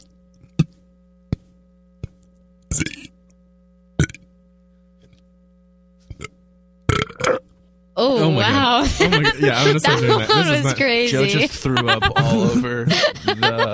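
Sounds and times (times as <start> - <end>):
steady low electrical hum: 0.0 - 13.7
loud burps: 2.7 - 3.1, 4.0 - 4.3, 6.1 - 7.5
speech: 8.0 - 13.7
laughter: 8.3 - 13.7.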